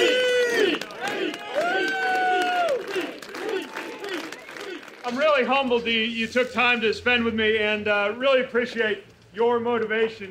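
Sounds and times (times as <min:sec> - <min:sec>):
outdoor overflow crowd at a political rally cheering and whooping: 0:00.0 - 0:05.0
scattered clapping: 0:00.2 - 0:05.7
speech: 0:05.1 - 0:10.2.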